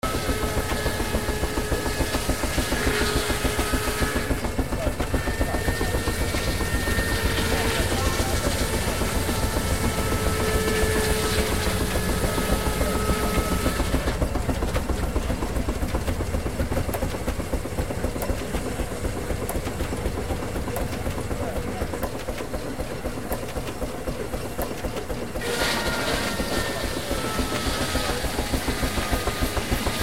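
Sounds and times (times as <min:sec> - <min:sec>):
saws: 0:00.0 - 0:04.4, 0:05.2 - 0:14.2, 0:25.4 - 0:30.0
steampunk machinery: 0:00.0 - 0:30.0.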